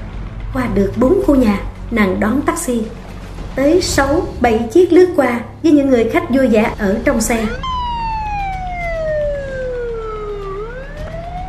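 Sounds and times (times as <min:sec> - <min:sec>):
speech: 0:00.5 - 0:03.0, 0:03.6 - 0:07.7
ambulance siren wailing: 0:07.0 - 0:11.4.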